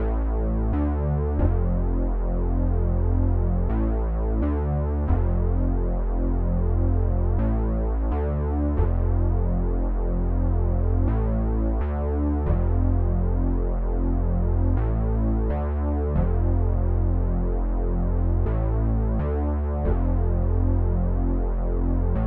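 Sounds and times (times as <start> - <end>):
1980s style F minor bass loop at 130 BPM: 0.0 - 22.2.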